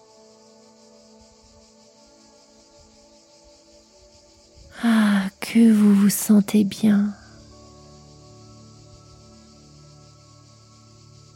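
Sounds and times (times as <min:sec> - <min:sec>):
cicadas buzzing in a steady drone: 0:00.0 - 0:11.3
speech: 0:05.5 - 0:07.2.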